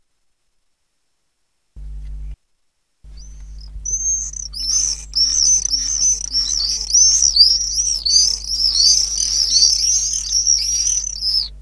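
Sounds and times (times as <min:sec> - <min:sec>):
steady low hum: 0:01.8 - 0:02.4, 0:03.1 - 0:11.6
common swift Apus apus giving thin high whistles: 0:03.2 - 0:11.6.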